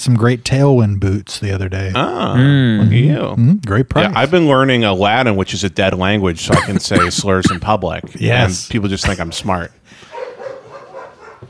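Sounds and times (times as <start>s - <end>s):
speech: 0.0s - 10.1s
dogs barking: 9.0s - 11.4s.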